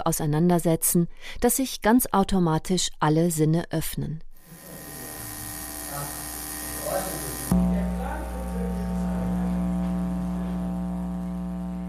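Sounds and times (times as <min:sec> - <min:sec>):
speech: 0:00.0 - 0:04.3
overhead power line humming: 0:04.5 - 0:11.8.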